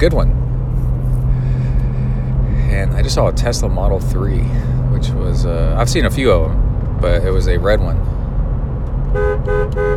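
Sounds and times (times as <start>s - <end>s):
speech: 0.0s - 0.4s, 2.8s - 8.1s, 9.1s - 9.9s
low rumble of a running car engine: 0.0s - 9.9s
car horn honking in a small town in Texas: 9.1s - 9.9s.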